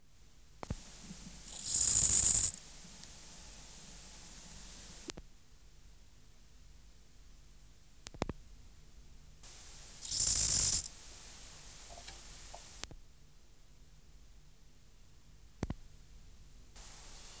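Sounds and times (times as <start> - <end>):
Chorthippus grasshopper hissing rasp: 0.2 - 5.1, 9.5 - 12.9, 16.8 - 17.3
clicks: 0.6 - 5.3, 9.5 - 13.0.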